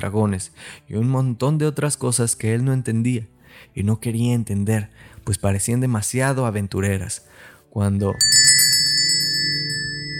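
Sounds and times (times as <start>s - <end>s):
speech: 0.0s - 8.5s
doorbell ringing with jangling strikes: 8.2s - 10.1s.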